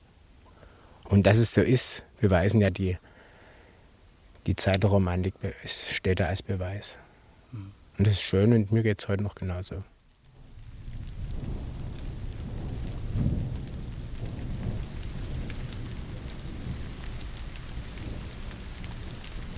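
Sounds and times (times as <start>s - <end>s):
steady rain pouring: 0.1s - 19.5s
speech: 1.1s - 3.1s, 4.4s - 9.9s
thunder rolling: 10.3s - 19.5s.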